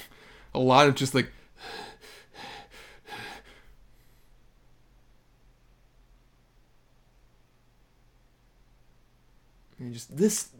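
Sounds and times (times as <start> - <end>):
speech: 0.6 - 1.8, 9.8 - 10.5
person imitating heavy mouth breathing: 1.6 - 3.7.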